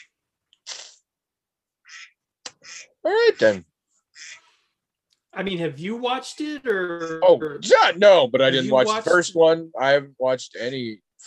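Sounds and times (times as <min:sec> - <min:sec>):
duck quacking: 0:01.8 - 0:04.4
speech: 0:03.0 - 0:03.7, 0:05.4 - 0:11.2.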